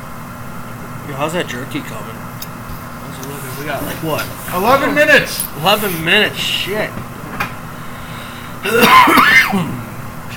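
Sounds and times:
speech: 0:01.1 - 0:02.3, 0:03.1 - 0:07.1, 0:08.6 - 0:09.8
person clearing throat: 0:08.6 - 0:09.9
person coughing: 0:08.6 - 0:09.9.

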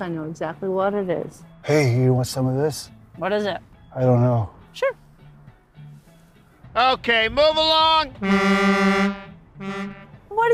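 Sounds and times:
speech: 0:00.0 - 0:05.0, 0:06.8 - 0:10.5
truck horn honking: 0:08.1 - 0:10.2.

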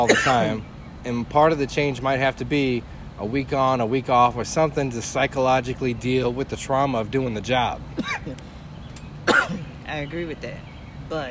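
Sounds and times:
person coughing: 0:00.0 - 0:00.6, 0:08.0 - 0:08.4, 0:09.3 - 0:09.7
speech: 0:00.0 - 0:08.5, 0:09.9 - 0:11.3.

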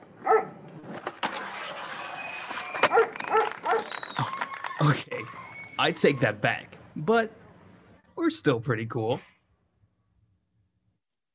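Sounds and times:
dog barking and whimpering: 0:00.2 - 0:00.6, 0:02.8 - 0:03.9
speech: 0:05.8 - 0:07.4, 0:08.2 - 0:09.3.

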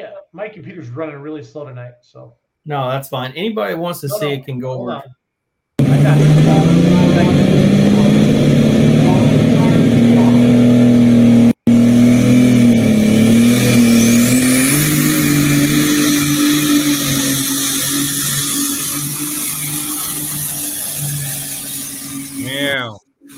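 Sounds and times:
speech: 0:00.4 - 0:05.2
pulling tractor engine roaring under load: 0:05.8 - 0:23.3.

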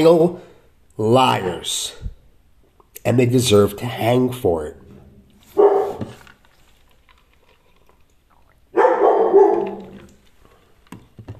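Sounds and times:
speech: 0:00.0 - 0:02.1, 0:03.0 - 0:04.8
dog barking: 0:05.5 - 0:06.2, 0:08.8 - 0:10.1.

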